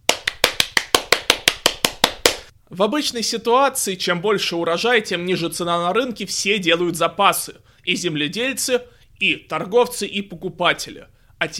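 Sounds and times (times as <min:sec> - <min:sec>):
applause hand claps after a political speech: 0:00.0 - 0:02.5
speech: 0:02.7 - 0:11.5.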